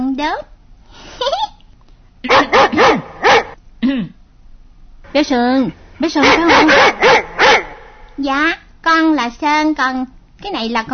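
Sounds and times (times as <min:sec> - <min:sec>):
speech: 0:00.2 - 0:00.5, 0:05.2 - 0:07.2, 0:08.2 - 0:10.9
pet dog barking: 0:02.3 - 0:03.6, 0:06.2 - 0:08.0.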